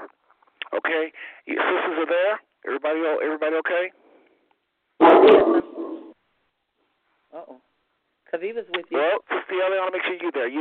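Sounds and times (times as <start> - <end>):
speech: 0.8 - 4.0, 5.0 - 5.6, 8.3 - 10.5
dog barking: 5.0 - 6.1.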